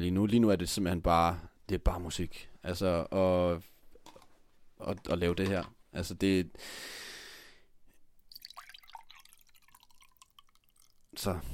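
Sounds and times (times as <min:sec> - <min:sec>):
speech: 0:00.0 - 0:03.7, 0:04.8 - 0:07.0, 0:11.2 - 0:11.5
quiet breath: 0:06.6 - 0:08.0, 0:11.2 - 0:11.5
little liquid clicks and drips: 0:08.2 - 0:11.3.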